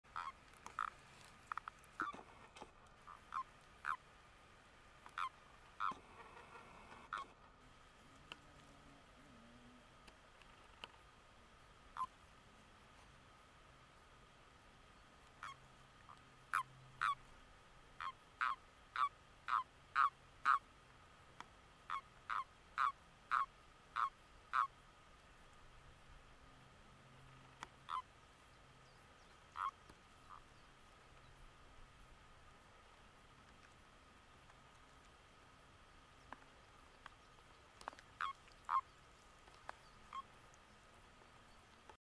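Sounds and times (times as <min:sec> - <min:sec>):
common toad calling: 0:00.1 - 0:04.1, 0:05.0 - 0:07.5, 0:11.9 - 0:12.2, 0:15.3 - 0:17.3, 0:18.0 - 0:20.7, 0:21.9 - 0:24.8, 0:27.2 - 0:28.3, 0:29.2 - 0:30.6, 0:36.2 - 0:40.7.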